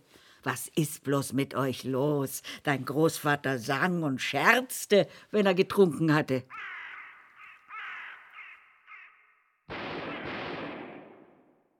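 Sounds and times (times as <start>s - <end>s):
speech: 0.4s - 6.7s
ravens cawing: 6.5s - 10.2s
loud blast: 9.7s - 11.6s.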